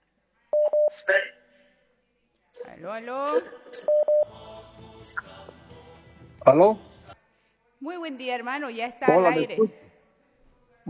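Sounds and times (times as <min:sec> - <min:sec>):
speech: 0:00.9 - 0:01.4, 0:02.7 - 0:05.6, 0:06.4 - 0:07.0, 0:07.8 - 0:10.0
telephone keypad tones as a call is dialed: 0:03.8 - 0:04.3.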